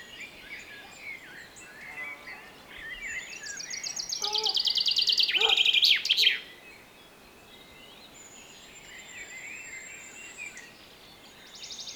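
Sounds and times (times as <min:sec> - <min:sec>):
common chaffinch song of bright repeated notes ending in a flourish: 0:00.0 - 0:11.9.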